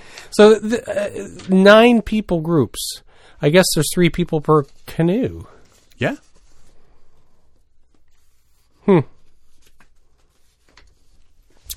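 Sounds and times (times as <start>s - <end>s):
speech: 0.3s - 6.3s, 8.8s - 9.1s
person murmuring: 0.4s - 1.5s, 8.8s - 9.1s
paper being handled: 4.2s - 11.7s.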